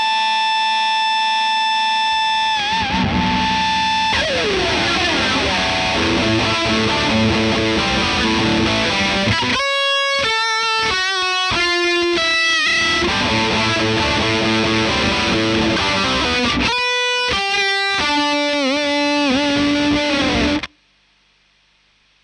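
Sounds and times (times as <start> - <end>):
Marshal guitar line: 0.0 - 20.7.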